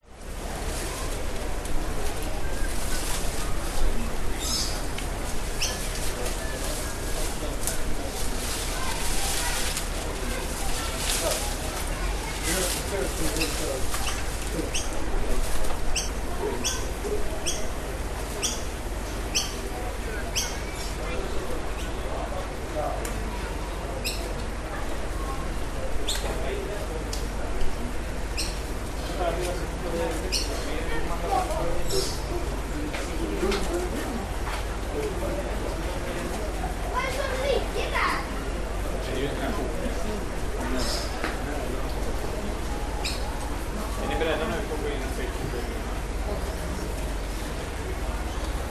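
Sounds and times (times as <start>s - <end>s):
koala in leaves in a zoo enclosure in Australia: 0.1s - 20.1s, 27.8s - 48.7s
people passing and chatting at a zoo in Australia: 0.2s - 48.7s.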